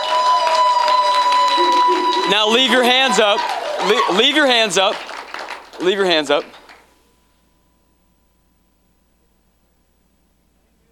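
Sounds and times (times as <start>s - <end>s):
audience clapping hands: 0.0s - 6.9s
speech: 2.3s - 5.1s, 5.8s - 6.6s.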